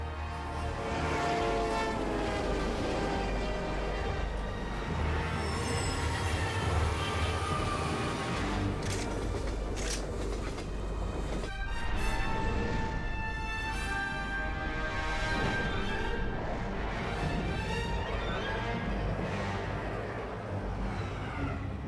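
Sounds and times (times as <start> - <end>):
train crossing a bridge: 0.0 - 21.8
train wheels clattering on rails: 4.3 - 11.6.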